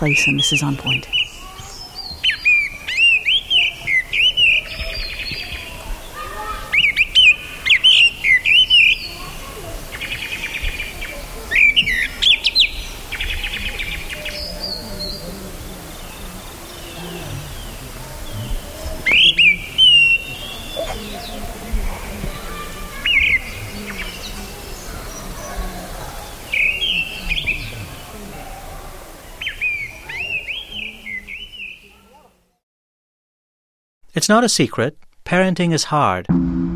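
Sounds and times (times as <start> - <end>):
speech: 0.0 - 1.2, 34.3 - 36.5
gray-winged blackbird song recorded in India: 0.0 - 15.3, 15.9 - 22.4, 26.3 - 28.1, 29.4 - 32.0.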